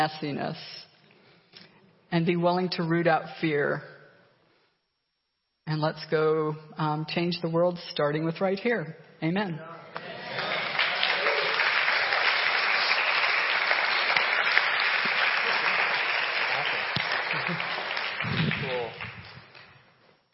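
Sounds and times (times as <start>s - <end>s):
speech: 0.0s - 0.8s, 2.1s - 3.9s, 5.7s - 9.8s, 17.5s - 17.7s
crowd applauding after a sermon: 10.0s - 19.8s.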